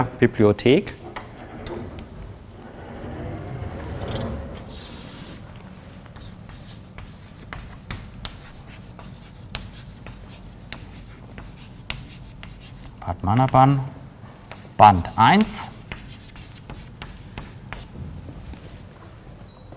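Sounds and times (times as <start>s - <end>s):
speech: 0.0s - 1.0s, 13.3s - 14.0s, 14.8s - 15.7s
lecturer writing on a board during a university lecture: 6.1s - 13.6s, 14.5s - 17.9s.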